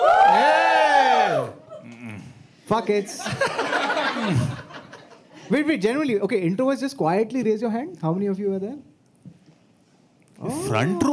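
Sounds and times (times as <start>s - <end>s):
live audience yelling and cheering: 0.0s - 1.6s
speech: 2.7s - 4.6s, 5.5s - 8.9s, 10.4s - 11.1s
laughter: 2.8s - 5.4s.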